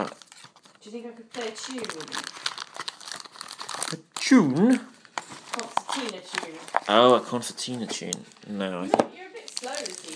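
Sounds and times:
speech: 0:00.9 - 0:02.4, 0:03.9 - 0:04.9, 0:06.0 - 0:09.2
little pieces of concertina paper rummaged through in a box: 0:01.3 - 0:07.2, 0:09.4 - 0:10.1.

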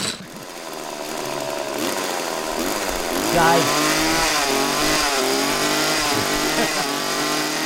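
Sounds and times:
chainsaw engine revving: 0:00.0 - 0:07.6
laughter: 0:03.3 - 0:07.4
speech: 0:03.4 - 0:03.9.

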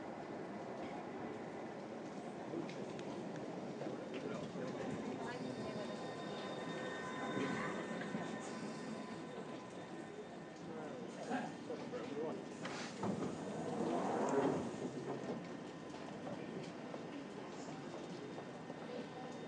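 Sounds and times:
faint voices murmuring: 0:00.1 - 0:19.4
train rumbling through a station: 0:02.4 - 0:11.1, 0:12.9 - 0:17.7
thin metallic squeals: 0:05.2 - 0:10.4.

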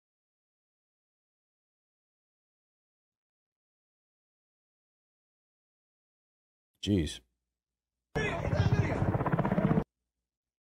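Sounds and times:
speech: 0:06.8 - 0:07.3
helicopter rotor chopping: 0:08.2 - 0:09.9.

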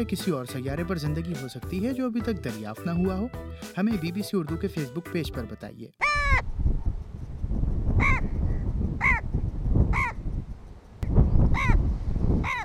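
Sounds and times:
speech: 0:00.0 - 0:06.4
Egyptian vulture calls: 0:06.0 - 0:06.5, 0:08.0 - 0:08.3, 0:09.0 - 0:09.3, 0:09.9 - 0:10.2, 0:11.5 - 0:11.8, 0:12.4 - 0:12.6
steady low rumble of wind: 0:06.0 - 0:12.6.

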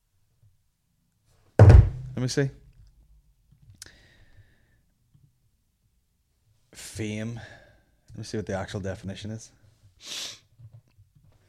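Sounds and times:
speech: 0:02.2 - 0:02.6, 0:07.0 - 0:10.4
sharp loud sniff through the nose: 0:10.0 - 0:10.5.

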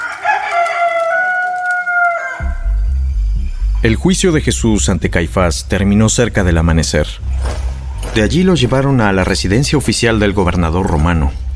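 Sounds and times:
rooster crowing: 0:00.0 - 0:02.7
speech: 0:03.8 - 0:07.6, 0:08.2 - 0:11.4.

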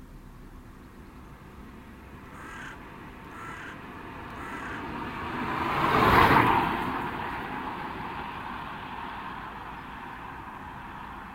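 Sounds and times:
steady broadband rumble of arriving cars: 0:00.0 - 0:04.8
car engine as a vehicle pulls into a fast-food restaurant lot: 0:00.0 - 0:11.3.

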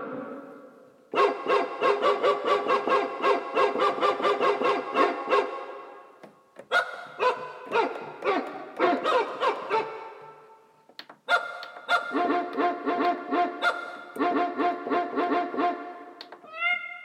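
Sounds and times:
dog barks at different pitches strung into a melody: 0:01.2 - 0:05.8, 0:06.7 - 0:10.4, 0:11.3 - 0:16.2.

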